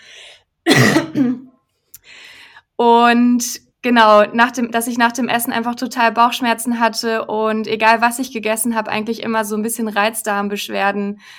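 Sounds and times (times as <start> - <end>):
person coughing: 0.7 - 1.5
speech: 2.8 - 11.3.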